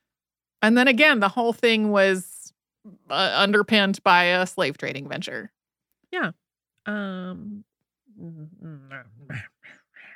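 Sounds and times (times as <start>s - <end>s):
speech: 0.6s - 9.5s
person growling: 8.2s - 9.7s.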